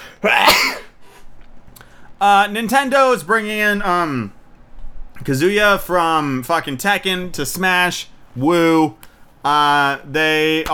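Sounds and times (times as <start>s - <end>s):
person sneezing: 0.0s - 1.3s
speech: 0.2s - 0.7s, 2.2s - 4.4s, 5.2s - 10.7s.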